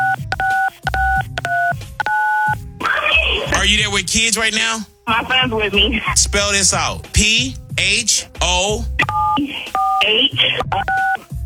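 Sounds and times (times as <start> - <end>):
telephone keypad dual-pitch dialing beeps: 0.0 - 2.6, 9.0 - 11.3
speech: 3.7 - 11.1.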